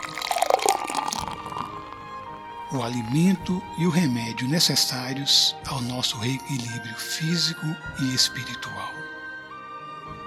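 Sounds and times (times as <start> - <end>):
water pouring into a glass: 0.0 - 2.4
speech: 2.7 - 9.2.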